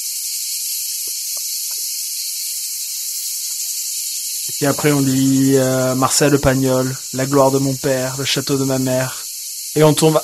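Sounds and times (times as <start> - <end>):
loud steady chorus of cicadas buzzing: 0.0 - 10.2
speech: 4.6 - 9.2, 9.8 - 10.2.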